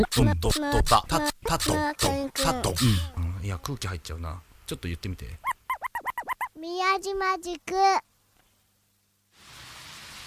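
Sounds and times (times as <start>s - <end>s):
speech: 0.0s - 5.5s, 6.6s - 8.1s
steady rain falling: 9.3s - 10.2s.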